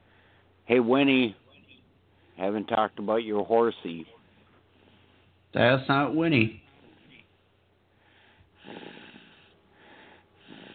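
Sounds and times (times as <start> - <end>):
speech: 0.7 - 1.4, 2.4 - 4.2, 5.5 - 6.6, 8.6 - 8.9
baby snoring: 8.6 - 10.7.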